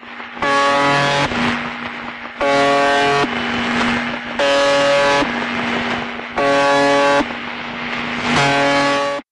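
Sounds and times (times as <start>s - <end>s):
harsh buzzing shortwave radio station signal: 0.0s - 9.2s
steady low hum: 0.0s - 9.2s.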